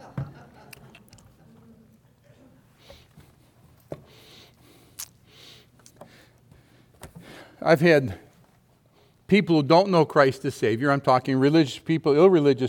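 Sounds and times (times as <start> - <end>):
sipping and swallowing lemon water: 0.7 - 1.4
speech: 7.6 - 8.2, 9.3 - 12.6.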